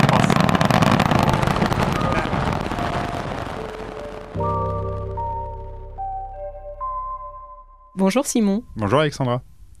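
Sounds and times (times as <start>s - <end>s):
rocket liftoff with four RS-25 engines and solid rocket boosters roaring: 0.0s - 5.4s
melodic jingle of rising stepped tones: 0.6s - 8.5s
speech: 8.0s - 9.5s.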